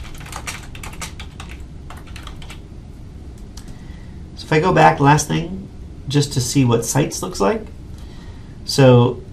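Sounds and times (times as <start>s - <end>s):
typing on a computer keyboard: 0.0s - 2.6s
speech: 4.5s - 7.8s, 8.7s - 9.2s.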